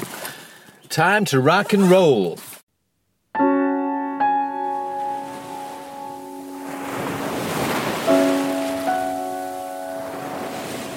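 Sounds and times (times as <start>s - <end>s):
speech: 1.0s - 2.5s
sustained ringing musical notes: 3.4s - 10.9s
sea waves crashing on shore: 4.4s - 10.9s.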